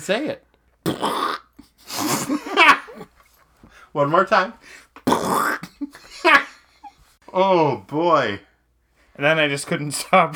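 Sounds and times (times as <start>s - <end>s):
speech: 0.0s - 1.2s, 3.9s - 6.5s, 7.3s - 8.5s, 9.2s - 10.3s
voice imitating an abrupt loud fart: 0.8s - 3.1s, 5.0s - 5.9s
breathy laughing: 0.9s - 3.9s, 4.6s - 7.1s.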